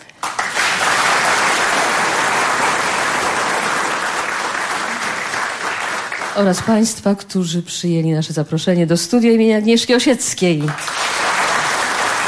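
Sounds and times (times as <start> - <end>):
studio audience applause: 0.0 - 6.7, 10.6 - 12.2
speech: 6.4 - 11.0.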